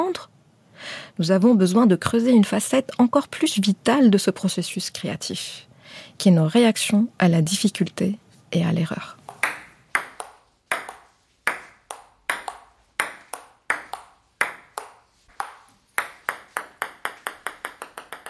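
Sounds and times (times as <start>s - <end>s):
speech: 0.0s - 9.2s
ping-pong rally ball hits: 9.3s - 18.2s.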